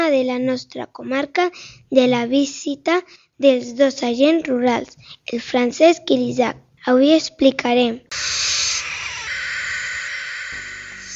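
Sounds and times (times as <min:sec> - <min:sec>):
speech: 0:00.1 - 0:08.4
barn owl screeching: 0:08.1 - 0:11.1.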